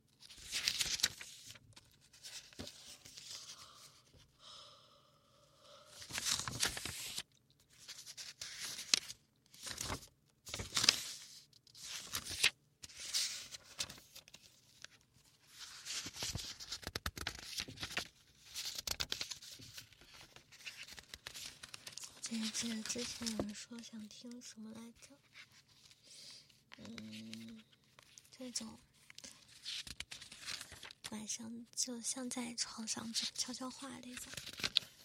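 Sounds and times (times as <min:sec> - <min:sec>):
pages of a small notebook flipping: 0:00.2 - 0:03.5, 0:06.0 - 0:23.6, 0:29.1 - 0:31.1, 0:34.2 - 0:35.0
speech: 0:22.6 - 0:25.3, 0:28.5 - 0:28.9, 0:31.1 - 0:34.6.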